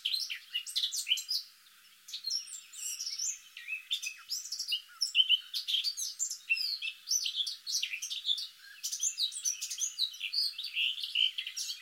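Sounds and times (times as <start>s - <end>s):
Eurasian blackcap Sylvia atricapilla twittering: 0.0s - 11.7s.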